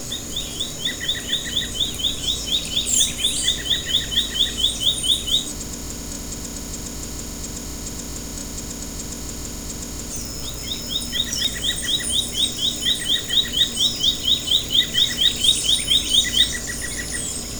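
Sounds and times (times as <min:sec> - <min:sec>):
scrub greenlet: 0:00.0 - 0:05.5, 0:10.2 - 0:17.5.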